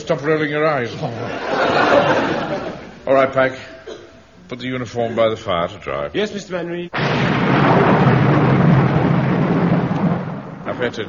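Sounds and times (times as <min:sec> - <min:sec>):
laughter: 0:00.0 - 0:03.1
speech: 0:00.1 - 0:03.7, 0:04.5 - 0:07.9, 0:10.8 - 0:11.0
continuous rumble of thunder in a storm: 0:07.0 - 0:11.0.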